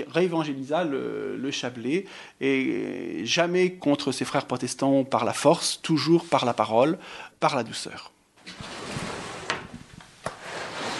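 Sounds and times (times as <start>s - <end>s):
speech: 0.1s - 8.8s
decorated wooden drawer sliding open with a rasping scrape: 8.4s - 10.9s.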